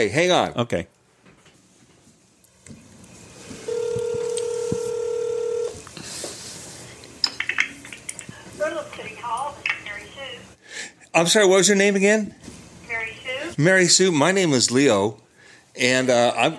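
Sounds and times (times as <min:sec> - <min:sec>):
speech: 0:00.0 - 0:01.0, 0:11.1 - 0:15.2, 0:15.8 - 0:16.5
cell phone steady electronic dialing tone: 0:03.6 - 0:05.8.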